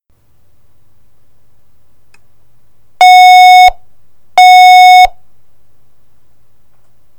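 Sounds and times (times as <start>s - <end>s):
tone ringer twin beeps: 4.4s - 5.1s.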